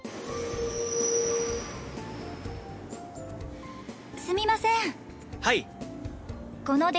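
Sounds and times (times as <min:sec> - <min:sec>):
broad rumbling train station ambience: 0:00.2 - 0:04.2
speech: 0:05.5 - 0:05.7, 0:06.7 - 0:06.9.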